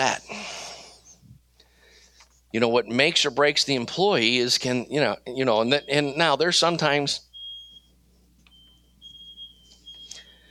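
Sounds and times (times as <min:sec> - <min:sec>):
low steady hum: 0:00.0 - 0:10.5
speech: 0:02.5 - 0:07.3
interlinked smoke alarm beeping from a kitchen downstairs: 0:02.5 - 0:10.5.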